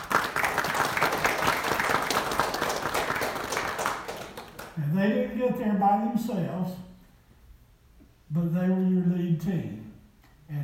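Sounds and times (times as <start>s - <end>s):
church audience applauding: 0.0s - 4.8s
speech: 5.4s - 6.8s, 8.4s - 9.8s.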